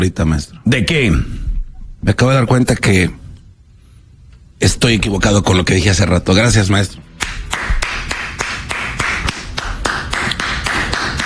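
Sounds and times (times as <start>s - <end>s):
speech: 0.0s - 1.4s, 2.0s - 3.2s, 4.6s - 7.7s
single person clapping hands: 7.2s - 11.2s.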